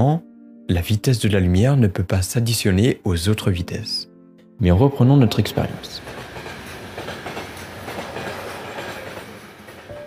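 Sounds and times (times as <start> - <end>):
speech: 0.0 - 6.2
train running on rails at about 100 km/h past a station platform: 5.4 - 10.0.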